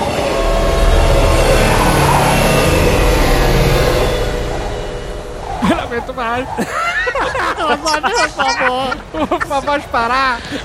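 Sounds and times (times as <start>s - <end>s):
maglev train roaring past in a tall tunnel: 0.0s - 9.4s
speech: 6.2s - 6.9s, 7.7s - 10.6s
laughter: 6.5s - 10.6s.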